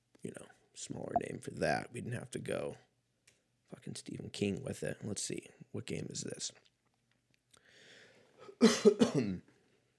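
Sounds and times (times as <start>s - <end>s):
speech: 0.8s - 2.9s, 3.8s - 6.7s, 8.6s - 9.5s
person coughing harshly and raspily: 8.6s - 9.4s.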